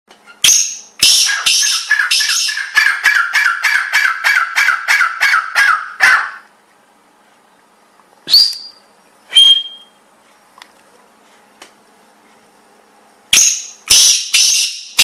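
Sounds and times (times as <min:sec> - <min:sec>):
kala teetar calling as a ringtone: 0:00.3 - 0:06.5, 0:13.4 - 0:15.0.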